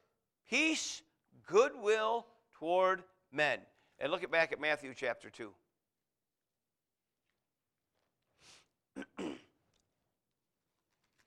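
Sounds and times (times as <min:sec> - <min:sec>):
speech: 0:00.5 - 0:05.6
man clearing his throat: 0:09.0 - 0:09.6.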